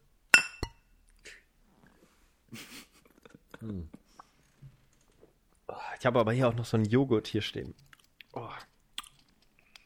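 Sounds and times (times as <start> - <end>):
two glasses clinking in a toast: 0.4 - 0.8
speech: 3.6 - 4.0, 6.0 - 7.9.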